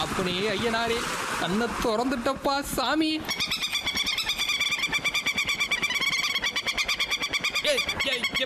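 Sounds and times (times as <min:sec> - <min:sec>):
speech: 0:00.2 - 0:03.6, 0:07.7 - 0:08.4
dense chorus of birds calling: 0:03.3 - 0:08.4.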